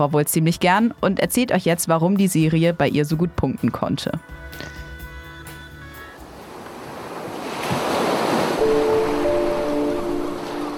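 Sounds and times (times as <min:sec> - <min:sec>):
speech: 0:00.0 - 0:04.8
small waves washing onto a sandy shore: 0:06.2 - 0:10.7.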